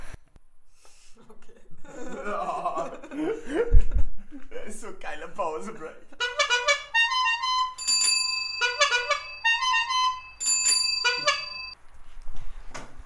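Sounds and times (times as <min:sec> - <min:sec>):
laughter: 0:01.2 - 0:04.6
speech: 0:05.3 - 0:06.0
bell ringing a short melodic pattern: 0:07.4 - 0:11.8.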